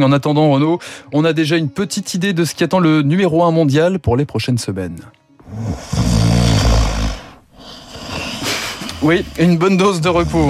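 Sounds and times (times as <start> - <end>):
speech: 0.0 - 6.6, 9.0 - 10.4
loud rasping snoring: 5.4 - 9.4.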